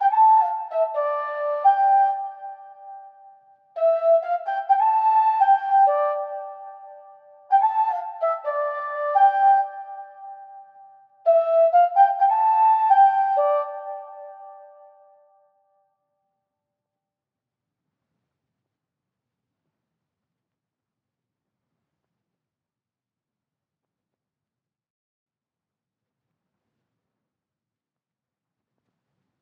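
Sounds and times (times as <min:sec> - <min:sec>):
flute loop in D minor: 0:00.0 - 0:03.0, 0:03.8 - 0:10.6, 0:11.3 - 0:14.8.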